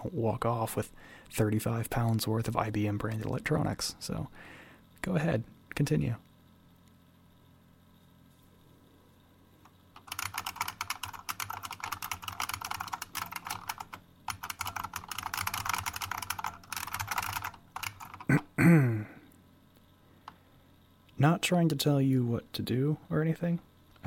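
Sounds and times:
speech: 0:00.0 - 0:06.3, 0:21.5 - 0:24.0
typing on a computer keyboard: 0:10.0 - 0:18.4
person clearing throat: 0:18.3 - 0:19.2.

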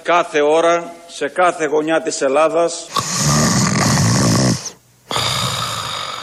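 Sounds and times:
speech: 0:00.0 - 0:03.4
man snoring after falling asleep watching television: 0:02.9 - 0:06.2.

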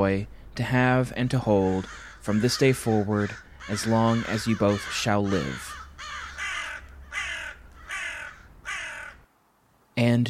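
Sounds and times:
speech: 0:00.0 - 0:05.8, 0:10.0 - 0:10.2
crow cawing harshly: 0:01.5 - 0:09.3.

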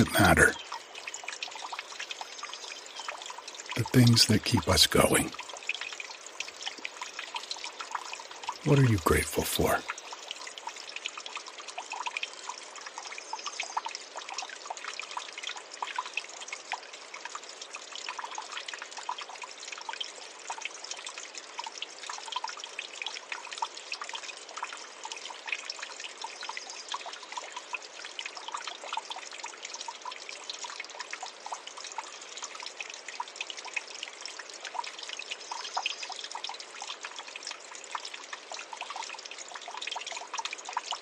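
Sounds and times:
speech: 0:00.0 - 0:00.6, 0:03.8 - 0:05.4, 0:08.7 - 0:09.9
creek water trickling and babbling: 0:00.0 - 0:41.0.

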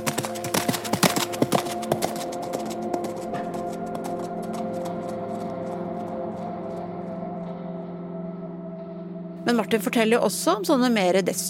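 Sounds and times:
horse hooves clip-clopping: 0:00.0 - 0:06.9
steady sustained music tones: 0:00.0 - 0:11.4
speech: 0:09.5 - 0:11.4.

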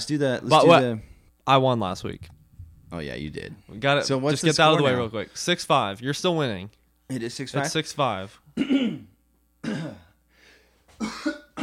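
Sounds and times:
speech: 0:00.0 - 0:02.3, 0:02.9 - 0:09.0, 0:11.0 - 0:11.4
person clearing throat: 0:08.6 - 0:10.2, 0:11.0 - 0:11.6.

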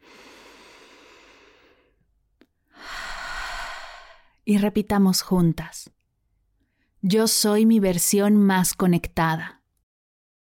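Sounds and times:
slow deep breathing during guided breathing practice: 0:00.0 - 0:02.1, 0:02.7 - 0:04.4
speech: 0:04.5 - 0:06.0, 0:07.0 - 0:09.6.

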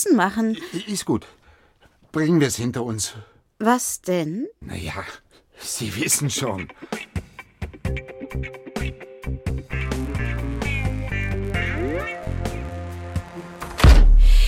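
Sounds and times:
speech: 0:00.0 - 0:01.4, 0:02.1 - 0:07.1, 0:08.3 - 0:08.6
music with plucked and sustained notes: 0:07.8 - 0:13.9
front door of a house slamming shut: 0:13.8 - 0:14.2.

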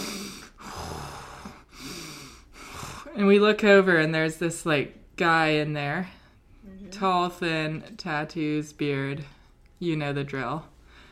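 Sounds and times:
person imitating very loud heavy breathing of a man in a cold plunge: 0:00.0 - 0:03.2
speech: 0:03.2 - 0:10.7.

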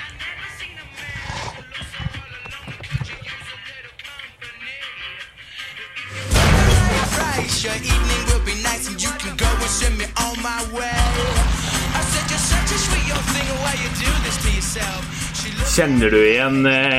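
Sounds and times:
guitar-driven band music from a video game intro with heavy sustained bass: 0:04.4 - 0:16.9
speech: 0:15.8 - 0:16.9.

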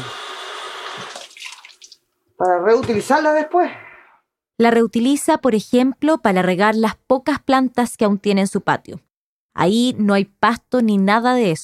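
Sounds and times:
water from washing dripping into a collecting container: 0:01.1 - 0:02.1
speech: 0:02.4 - 0:03.8, 0:04.6 - 0:11.6.

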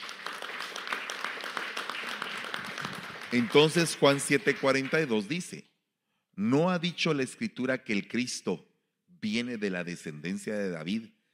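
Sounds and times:
audience applause: 0:00.0 - 0:05.4
speech: 0:03.3 - 0:05.7, 0:06.4 - 0:11.2.

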